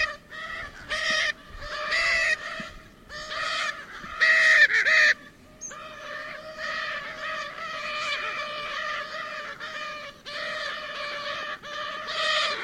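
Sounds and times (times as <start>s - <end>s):
Lear's macaw squawking: 0.0s - 12.6s.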